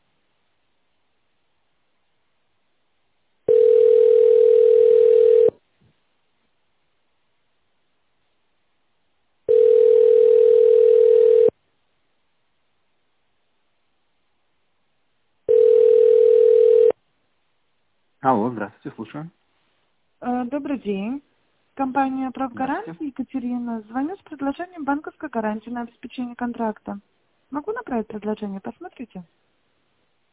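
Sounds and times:
telephone beep while a call is transferred: 3.5s - 5.5s, 9.5s - 11.5s, 15.5s - 16.9s
speech: 19.1s - 19.4s, 20.7s - 29.4s.

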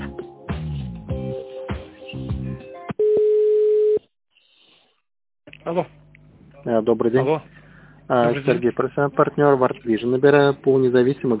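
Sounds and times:
telephone line tones while a call is transferred: 3.0s - 4.0s
speech: 5.7s - 6.0s, 6.6s - 7.5s, 8.1s - 11.3s.

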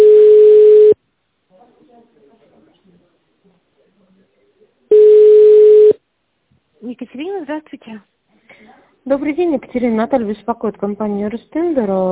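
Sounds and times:
telephone line tones during transfer to an operator: 0.0s - 1.0s, 4.9s - 6.0s
speech: 7.4s - 8.2s, 9.0s - 12.1s.

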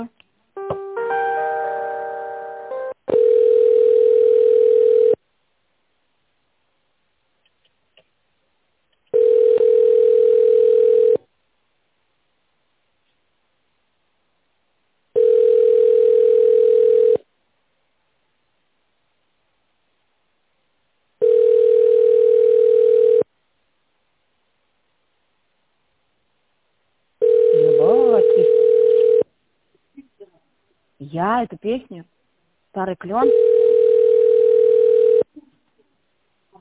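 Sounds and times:
telephone ringback tone while a call is put through to a specialist: 1.0s - 5.2s, 9.1s - 11.2s, 15.2s - 17.2s, 21.2s - 23.3s, 27.2s - 29.3s, 33.2s - 35.3s
speech: 31.4s - 32.1s, 32.8s - 33.5s.

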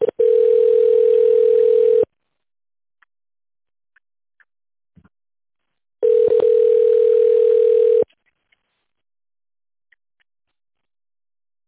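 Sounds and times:
telephone ringback tone while a call connects to an operator: 0.0s - 2.1s, 6.0s - 8.1s.

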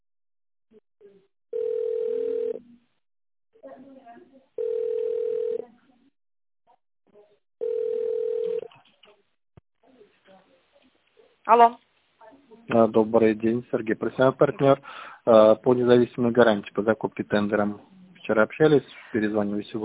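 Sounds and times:
telephone line tones during a call transfer: 1.5s - 2.6s, 4.6s - 5.6s, 7.6s - 8.7s
speech: 11.4s - 11.8s, 12.7s - 19.8s.

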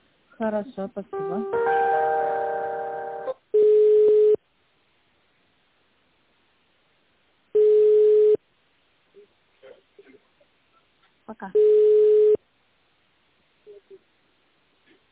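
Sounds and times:
speech: 0.4s - 1.8s, 11.4s - 11.9s
steady telephone line buzzing tone during a call transfer: 3.1s - 4.4s, 7.6s - 8.4s, 11.6s - 12.4s
telephone line beeps during a call transfer: 3.6s - 4.4s, 11.6s - 12.4s.

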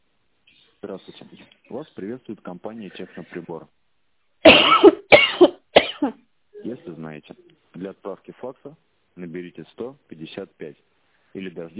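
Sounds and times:
speech: 0.8s - 3.8s, 6.0s - 11.7s
harsh coughs: 4.4s - 6.8s.

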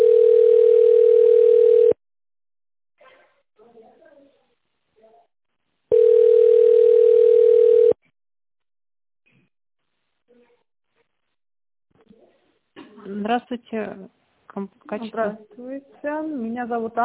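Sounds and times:
telephone ringback tones while a call is transferred: 0.0s - 2.0s, 5.9s - 8.0s
speech: 13.3s - 17.0s.

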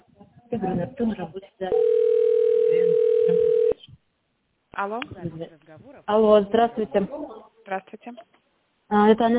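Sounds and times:
speech: 0.6s - 3.8s, 4.8s - 9.3s
telephone line tones while a call is transferred: 1.8s - 3.8s.

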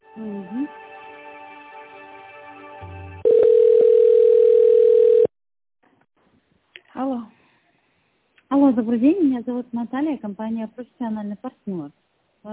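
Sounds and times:
speech: 0.2s - 0.9s, 8.8s - 12.5s
telephone line tone during business call transfer: 3.2s - 5.3s.

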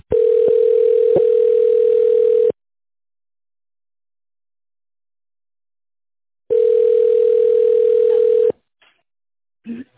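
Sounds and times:
telephone ringback tone during call transfer to a mobile phone: 0.1s - 2.6s, 6.5s - 8.5s.

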